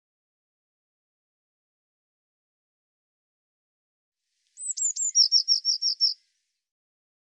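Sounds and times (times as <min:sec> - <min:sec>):
Eurasian blue tit calling: 0:04.6 - 0:06.2.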